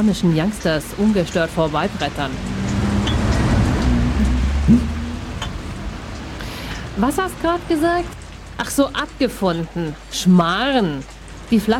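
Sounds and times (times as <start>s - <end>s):
speech: 0.0s - 2.6s, 4.7s - 5.0s, 7.0s - 11.7s
steady rain hissing: 0.0s - 11.7s
low rumbling drone: 1.6s - 7.0s.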